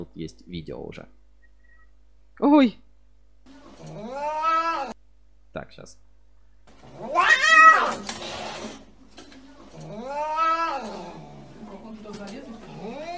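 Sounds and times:
speech: 0.0 - 1.2, 2.4 - 2.9, 5.6 - 6.1
cat meowing and yowling: 4.1 - 5.0, 7.0 - 8.0, 10.0 - 11.0.

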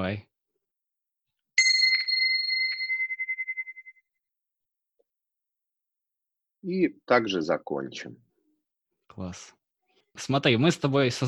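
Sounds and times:
speech: 0.0 - 0.3, 6.6 - 8.2, 9.2 - 9.6, 10.2 - 11.2
small bells ringing: 1.6 - 4.1.

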